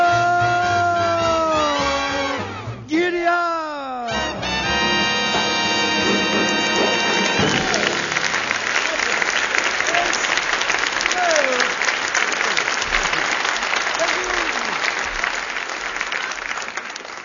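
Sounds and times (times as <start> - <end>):
music: 0.0 - 3.0, 4.1 - 8.9
audience applause: 4.8 - 17.2.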